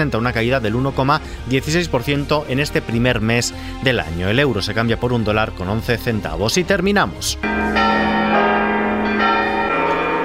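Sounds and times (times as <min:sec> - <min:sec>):
speech: 0:00.0 - 0:08.0
church bells ringing: 0:07.4 - 0:10.2.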